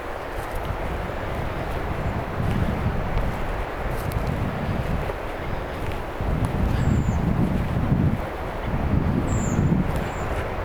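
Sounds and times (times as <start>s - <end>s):
redwings calling: 0.2s - 10.4s.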